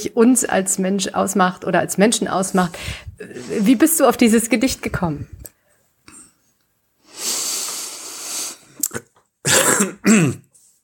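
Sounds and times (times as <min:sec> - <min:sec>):
speech: 0:00.0 - 0:05.5, 0:09.8 - 0:10.4
person clearing throat: 0:08.8 - 0:10.5.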